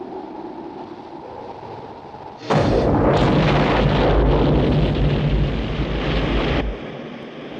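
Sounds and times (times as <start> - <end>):
bombs dropped from an aircraft exploding: 2.5 - 6.7.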